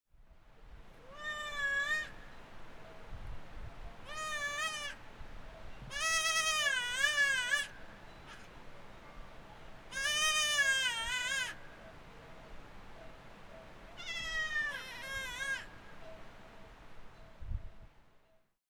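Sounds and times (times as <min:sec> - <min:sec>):
baby goats of the Tiger Leaping Gorge in China: 0:01.1 - 0:02.2, 0:04.1 - 0:05.0, 0:05.9 - 0:07.7, 0:09.9 - 0:11.6, 0:14.0 - 0:15.7.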